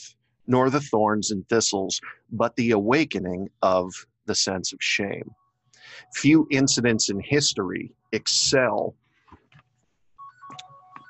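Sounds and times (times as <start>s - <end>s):
speech: 0.5s - 9.0s
phone ringtone: 10.2s - 11.0s.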